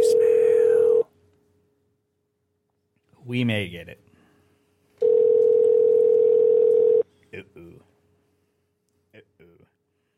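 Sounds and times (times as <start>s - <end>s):
electronic telephone ringing tone on a telephone line: 0.0s - 1.0s, 5.0s - 7.0s
speech: 3.3s - 4.1s, 7.4s - 7.9s.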